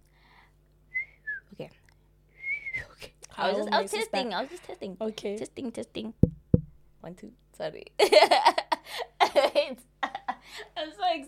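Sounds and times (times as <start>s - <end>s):
person whistling short wavering notes: 0.9s - 1.5s, 2.3s - 3.0s
speech: 1.6s - 1.8s, 3.4s - 6.3s, 7.0s - 9.0s, 9.6s - 9.9s, 10.6s - 11.2s.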